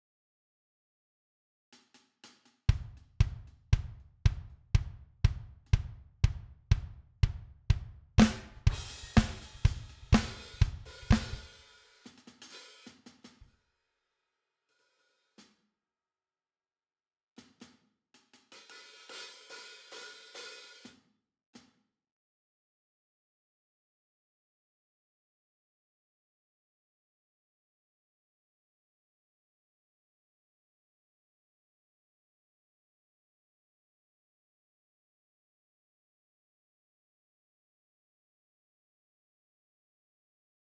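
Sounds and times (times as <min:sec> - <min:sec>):
drums from a VST software instrument: 0:01.8 - 0:13.5, 0:17.4 - 0:21.0.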